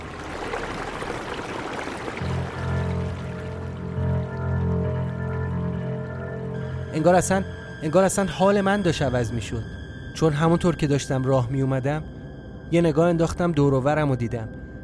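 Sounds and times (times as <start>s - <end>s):
river water flowing: 0.0s - 6.8s
speech: 7.0s - 12.1s, 12.7s - 14.6s.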